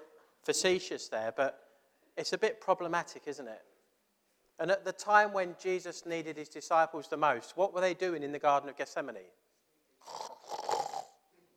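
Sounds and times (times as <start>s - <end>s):
speech: 0.5s - 1.6s, 2.2s - 3.7s, 4.6s - 9.4s, 10.0s - 10.2s
soft raspy snore: 10.0s - 11.2s.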